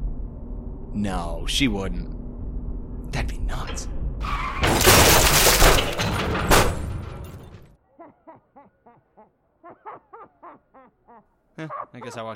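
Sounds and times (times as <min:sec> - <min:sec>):
speech: 0:00.9 - 0:02.2, 0:03.1 - 0:06.6, 0:08.1 - 0:12.3
car smashing through a gate with crunching metal and shattering: 0:04.2 - 0:07.8
short rhythmic snickering laughs: 0:07.9 - 0:12.3.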